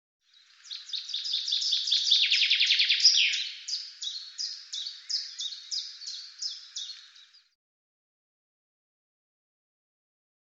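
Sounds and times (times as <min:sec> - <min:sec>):
bird singing a rapid high trill with descending flourish: 0:00.6 - 0:07.6.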